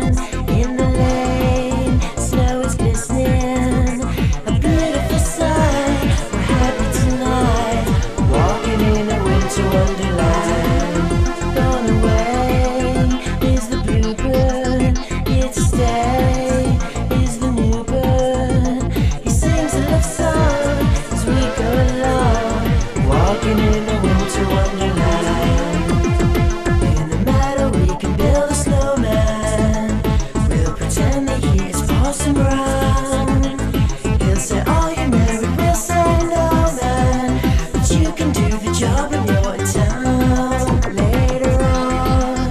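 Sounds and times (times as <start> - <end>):
song with steady driving drum beat and layered instruments: 0.0 - 42.4.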